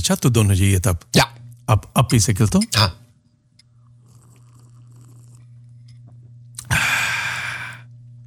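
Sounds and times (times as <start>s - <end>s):
speech: 0.0s - 3.0s
steady low hum: 0.0s - 8.2s
airy slurp of hot coffee: 3.8s - 6.8s.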